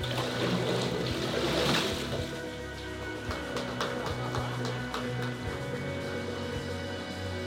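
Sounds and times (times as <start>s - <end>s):
water splashing during immersion baptism: 0.0s - 5.6s
constant outdoor water background: 0.0s - 7.4s.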